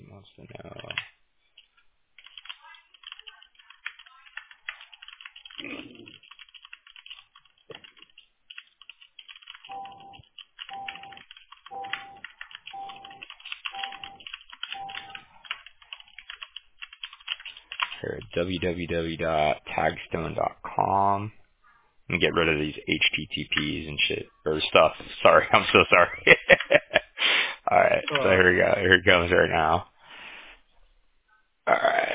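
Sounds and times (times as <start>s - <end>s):
speech: 0.2s - 1.1s, 18.0s - 21.4s, 22.1s - 26.8s, 27.7s - 29.9s
computer keyboard typing a message: 0.8s - 18.7s
laughter: 25.8s - 27.2s.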